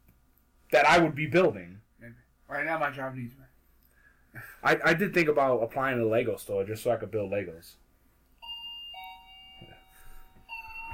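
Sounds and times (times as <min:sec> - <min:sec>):
speech: 0:00.8 - 0:03.5, 0:04.4 - 0:07.8
home doorbell chime ringing: 0:08.4 - 0:10.9.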